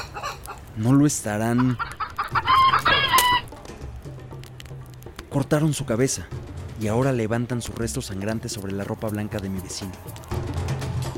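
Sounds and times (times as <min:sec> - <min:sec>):
chicken clucking and squawking during a ritual by a fire in a park: 0:00.0 - 0:00.7, 0:01.4 - 0:03.5
speech: 0:00.8 - 0:02.0, 0:05.4 - 0:10.3.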